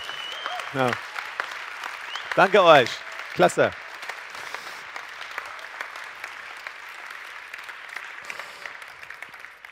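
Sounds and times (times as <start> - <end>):
room full of people applauding: 0.0 - 9.7
speech: 0.7 - 1.1, 2.4 - 3.8.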